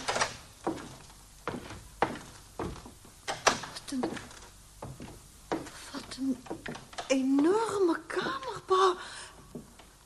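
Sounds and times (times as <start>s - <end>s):
door opening with sharp wooden thuds and knocks: 0.0s - 7.6s
faint clattering: 0.0s - 10.0s.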